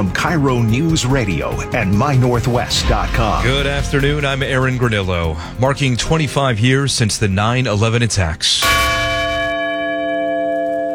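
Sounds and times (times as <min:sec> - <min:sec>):
speech: 0:00.2 - 0:08.8
heavy bell tolling at a memorial crash site: 0:02.5 - 0:06.8, 0:08.6 - 0:10.6.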